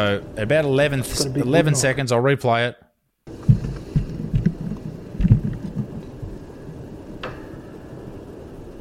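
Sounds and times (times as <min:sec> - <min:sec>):
steady rumbling background: 0:00.0 - 0:02.6, 0:03.3 - 0:08.7
speech: 0:00.0 - 0:02.8
dull low-pitched knocks: 0:03.3 - 0:06.4.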